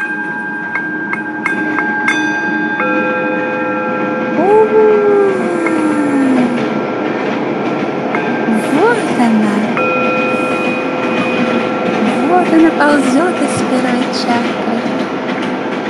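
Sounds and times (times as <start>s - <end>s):
rising and falling tonal sweeps: 0.0s - 15.8s
train rolling along rails: 0.0s - 15.8s.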